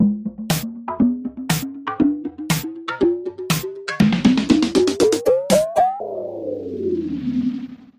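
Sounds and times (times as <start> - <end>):
mixed drums in C: 0.0 - 6.0.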